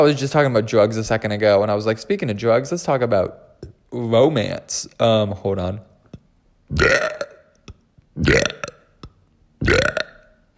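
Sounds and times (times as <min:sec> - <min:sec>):
speech: 0:00.0 - 0:05.9, 0:06.7 - 0:07.3, 0:08.2 - 0:08.6
small clicks and swallowing noises: 0:06.1 - 0:10.3
drawn-out croaking belch: 0:06.7 - 0:10.4.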